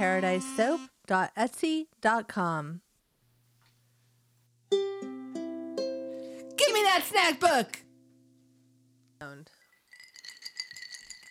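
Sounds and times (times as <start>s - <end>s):
speech: 0.0s - 2.8s, 6.7s - 7.8s, 9.2s - 9.6s
ice cubes clinking in a glass: 9.6s - 11.2s.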